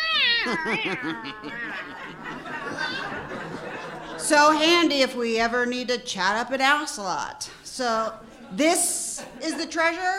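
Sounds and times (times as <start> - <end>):
cat meowing: 0.0 - 1.9
laughter: 0.3 - 4.6
speech: 0.4 - 10.1.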